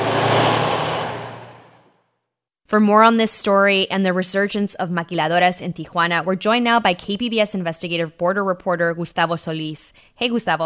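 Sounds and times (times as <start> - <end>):
heavy truck engine rumbling at a border crossing: 0.0 - 2.0
speech: 2.7 - 10.6.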